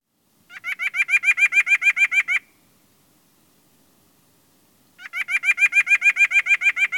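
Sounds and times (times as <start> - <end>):
white-breasted nuthatch giving nasal yank calls: 0.5 - 2.5, 5.0 - 6.9.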